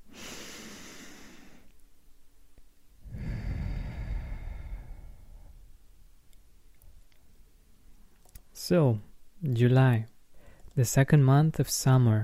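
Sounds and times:
deep breath in and out: 0:00.0 - 0:01.7, 0:03.0 - 0:05.8, 0:10.3 - 0:10.7
speech: 0:08.6 - 0:10.1, 0:10.8 - 0:12.2.

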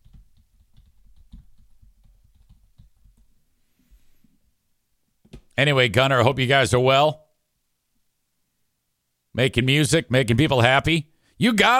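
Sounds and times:
typing on a computer keyboard: 0:00.0 - 0:03.3
speech: 0:05.6 - 0:07.2, 0:09.4 - 0:11.7.

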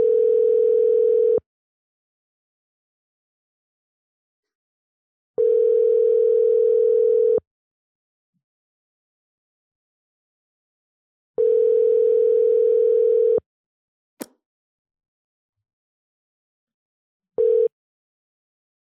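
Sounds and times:
telephone ringback tone while calling a spa: 0:00.0 - 0:01.4, 0:05.4 - 0:07.4, 0:11.4 - 0:13.4, 0:17.4 - 0:17.7.

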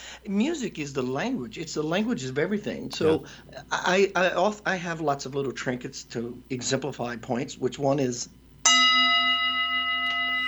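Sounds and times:
speech: 0:00.2 - 0:08.4
bell ringing: 0:08.7 - 0:10.4.

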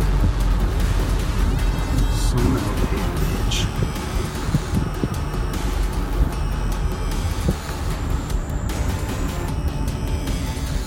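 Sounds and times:
car approaching with low engine rumble: 0:00.0 - 0:10.8.

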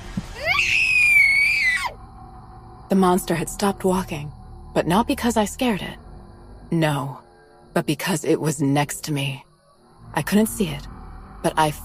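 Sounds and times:
person screaming in terror: 0:00.4 - 0:02.0
speech: 0:02.9 - 0:06.0, 0:06.7 - 0:09.5, 0:10.1 - 0:11.8.

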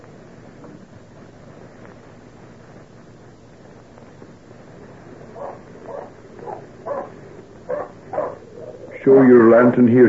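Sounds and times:
faint hiss: 0:00.0 - 0:10.0
dog barking: 0:05.4 - 0:08.7
speech: 0:09.0 - 0:10.0.

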